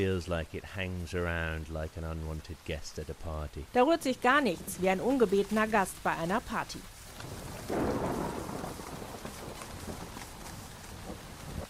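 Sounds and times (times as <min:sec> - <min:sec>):
speech: 0:00.0 - 0:07.9
steady rain: 0:00.0 - 0:11.6
deep rumble of thunder: 0:07.1 - 0:11.6.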